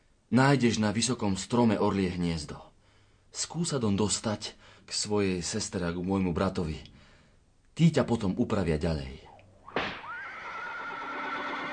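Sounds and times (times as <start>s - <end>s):
speech: 0.3s - 2.7s, 3.3s - 7.0s, 7.8s - 9.2s
coachman's whip crack: 9.6s - 10.6s
horse neighing: 10.0s - 11.7s.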